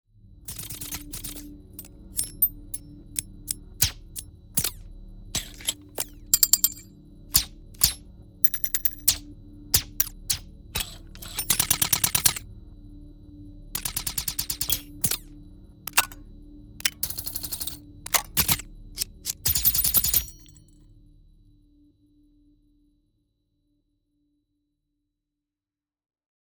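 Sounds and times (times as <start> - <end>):
designed metal sweeteners: 0.5 - 4.8, 5.4 - 9.2, 9.8 - 12.4, 13.8 - 15.2, 15.9 - 16.2, 16.8 - 20.6.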